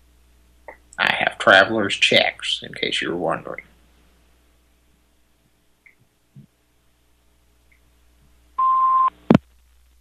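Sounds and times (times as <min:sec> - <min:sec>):
faint hum: 0:00.0 - 0:09.9
speech: 0:01.5 - 0:03.7
single steady electronic beep at one clear tone: 0:08.6 - 0:09.1.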